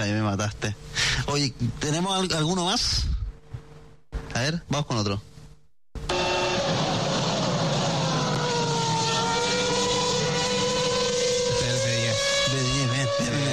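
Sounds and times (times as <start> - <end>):
speech: 0.0 - 3.2, 4.4 - 5.3
McLaren Formula One V8 engine screaming: 6.1 - 13.5.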